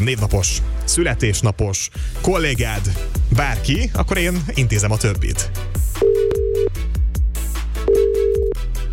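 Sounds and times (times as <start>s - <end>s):
speech: 0.0s - 5.8s
thumping music beats: 2.3s - 8.9s
telephone ringback tone: 6.0s - 6.7s, 7.9s - 8.6s.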